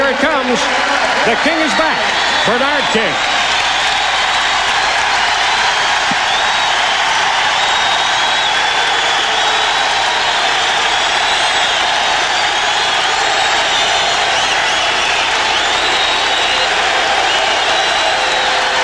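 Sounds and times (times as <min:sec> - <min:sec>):
large arena crowd cheering in a standing ovation: 0:00.0 - 0:18.8
speech: 0:00.5 - 0:03.4.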